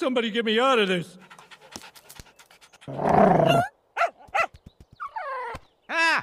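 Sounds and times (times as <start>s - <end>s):
speech: 0.0s - 1.4s, 2.9s - 3.7s
dog snarling growl: 2.9s - 3.7s
dog whining yelp: 3.4s - 5.6s
dog barking: 3.5s - 4.5s.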